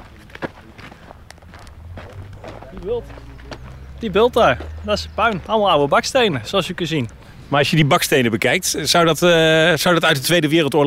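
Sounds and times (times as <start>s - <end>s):
footsteps crunching over rough ground outdoors: 0.0s - 7.3s
light noise: 0.0s - 10.8s
speech: 2.7s - 3.3s, 4.0s - 10.8s.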